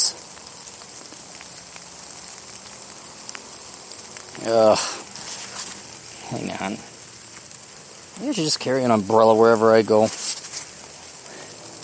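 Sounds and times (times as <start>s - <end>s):
rain falling outdoors from a small rain cloud: 0.0s - 11.8s
speech: 4.4s - 5.0s, 6.3s - 6.9s, 8.2s - 10.2s.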